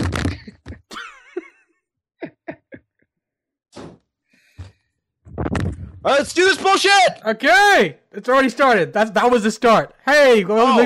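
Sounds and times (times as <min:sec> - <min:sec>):
door pushed shut with thumps and clatters: 0:03.8 - 0:04.0
speech: 0:06.0 - 0:10.8.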